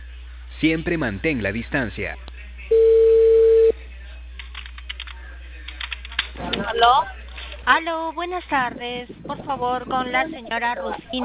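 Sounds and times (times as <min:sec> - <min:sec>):
speech: 0:00.6 - 0:02.8, 0:06.8 - 0:11.2
telephone line ringback beep: 0:02.7 - 0:03.8.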